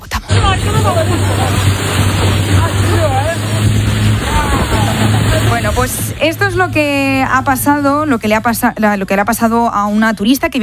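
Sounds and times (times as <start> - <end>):
splashing spray: 0.1 - 9.2
rushing wind: 0.3 - 8.3
small motorboat engine droning while accelerating on water in Botswana: 0.3 - 10.0
speech: 5.8 - 10.6.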